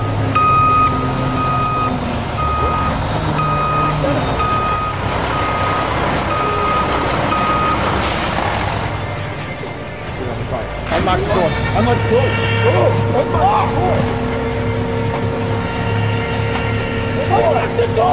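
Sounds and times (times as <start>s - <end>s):
large truck reversing beeps: 0.0s - 7.8s
loud diesel engine rumble of a large truck: 0.0s - 18.1s
truck air brakes hissing: 7.8s - 8.6s.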